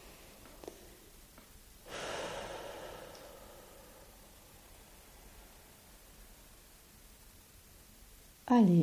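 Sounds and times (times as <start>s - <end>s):
slow deep inhale during a guided breathing exercise: 1.8s - 6.1s.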